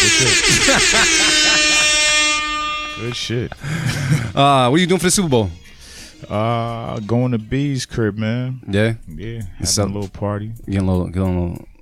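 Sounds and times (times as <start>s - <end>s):
laughter: 0.0s - 2.2s, 3.0s - 4.6s
air horn blast: 0.0s - 7.1s
speech: 0.2s - 1.8s, 3.0s - 11.7s.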